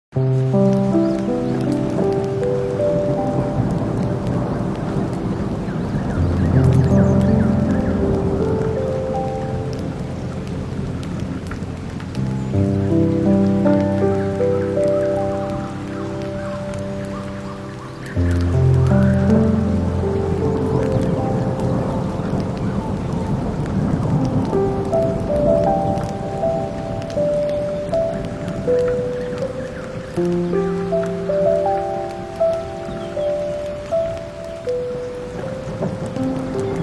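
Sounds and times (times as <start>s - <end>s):
campfire: 0.1s - 36.8s
forest ambience: 0.1s - 36.8s
rain: 0.1s - 36.8s
water: 0.1s - 36.8s
wind: 0.1s - 36.8s
sea: 0.2s - 36.8s.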